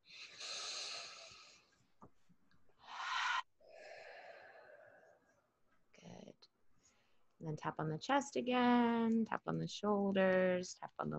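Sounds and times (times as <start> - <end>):
deep breathing during a calming tapping exercise: 0.0 - 1.8, 2.8 - 5.5
speech: 7.4 - 11.1.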